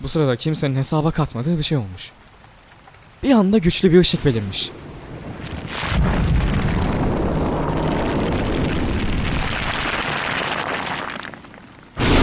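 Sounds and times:
speech: 0.0 - 2.3, 3.2 - 4.9
heavy rain pouring outside: 1.6 - 12.2.

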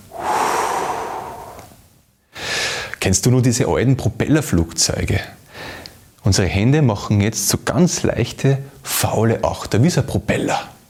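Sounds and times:
deep belly breath and slow exhale: 0.0 - 1.8
speech: 3.1 - 10.7.

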